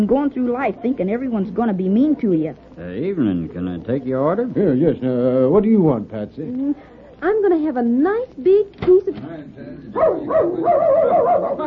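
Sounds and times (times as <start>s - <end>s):
speech: 0.0s - 11.6s
dog yelping and whining while running after a calf: 10.1s - 11.6s.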